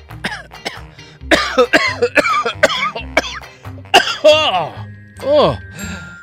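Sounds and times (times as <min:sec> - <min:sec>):
person coughing harshly: 0:00.2 - 0:04.8.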